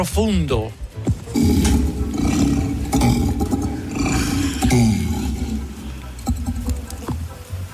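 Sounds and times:
Bengal tiger roaring: 0:01.3 - 0:07.2.

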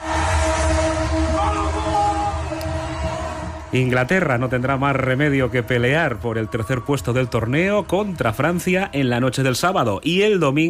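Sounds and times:
train horns blaring: 0:00.0 - 0:03.6
speech: 0:03.7 - 0:10.6.

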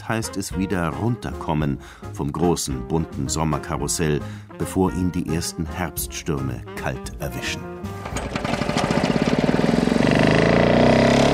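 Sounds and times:
speech: 0:00.1 - 0:08.6
small lawn mower engine running: 0:07.9 - 0:11.3.

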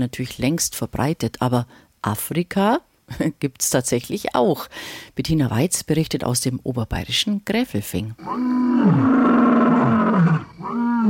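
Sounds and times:
speech: 0:00.0 - 0:09.4
lion roaring in a national park in Tanzania: 0:08.2 - 0:11.0.

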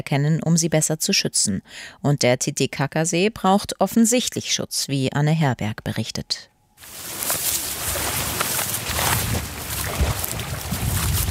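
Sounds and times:
speech: 0:00.0 - 0:06.5
wind blowing through lakeside reeds: 0:06.8 - 0:11.2
low gusty wind rumbles: 0:07.1 - 0:11.2.

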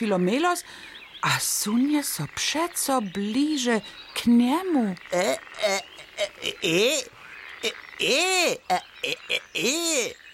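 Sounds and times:
speech: 0:00.0 - 0:10.2
person imitating a frog croaking: 0:04.8 - 0:10.2.

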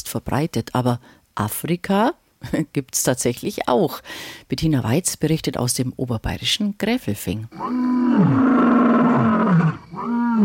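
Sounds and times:
speech: 0:00.1 - 0:08.8
lion roaring: 0:07.5 - 0:10.4.

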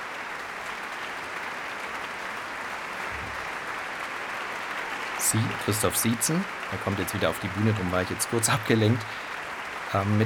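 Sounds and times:
sustained audience applause for a percussionist: 0:00.0 - 0:10.2
speech: 0:05.2 - 0:09.3, 0:09.9 - 0:10.2.

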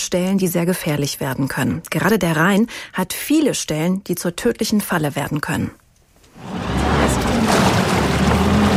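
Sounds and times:
speech: 0:00.1 - 0:05.8
rescue motorboat engine roaring across a river at speed: 0:06.4 - 0:08.7.

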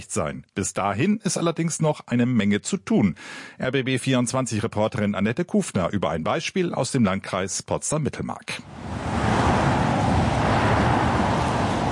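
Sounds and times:
speech: 0:00.0 - 0:09.5
cars driving through a roundabout: 0:08.6 - 0:11.8.

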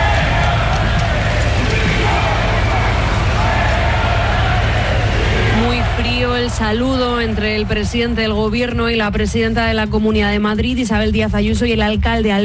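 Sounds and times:
large crowd booing and shouting insults at an arriving prime minister: 0:00.0 - 0:09.4
speech: 0:06.6 - 0:12.4.

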